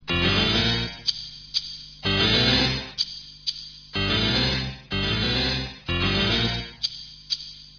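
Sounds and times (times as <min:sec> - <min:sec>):
DX synthesizer harpsichord: 0:00.0 - 0:01.4, 0:02.0 - 0:03.1, 0:04.0 - 0:07.1.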